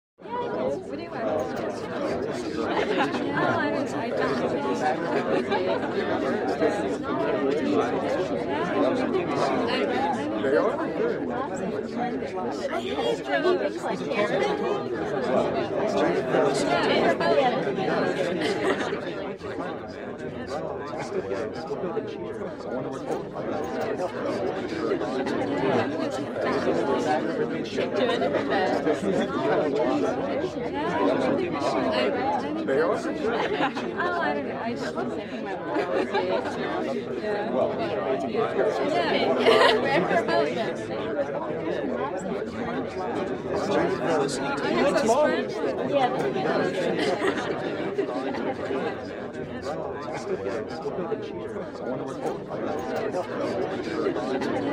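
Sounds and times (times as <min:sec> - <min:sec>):
50 people chatting at an indoor cocktail party: 0:00.2 - 0:54.7
laughter: 0:01.9 - 0:11.8, 0:12.7 - 0:19.7, 0:30.8 - 0:41.2, 0:43.4 - 0:49.0.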